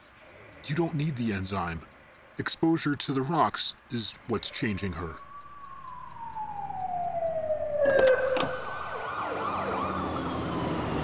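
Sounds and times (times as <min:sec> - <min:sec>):
speech: 0:00.7 - 0:05.2
police car sirens wailing and warbling: 0:04.2 - 0:11.0.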